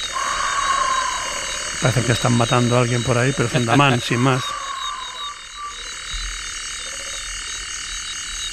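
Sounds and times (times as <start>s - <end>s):
toad croaking at night: 0.0s - 6.3s
African crake calling at night: 0.0s - 7.2s
night chorus of frogs and insects: 0.0s - 8.5s
speech: 1.8s - 4.6s.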